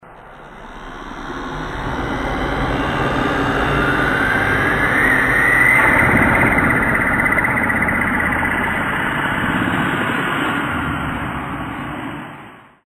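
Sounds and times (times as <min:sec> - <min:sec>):
spaceship passing with doppler: 0:00.6 - 0:11.9.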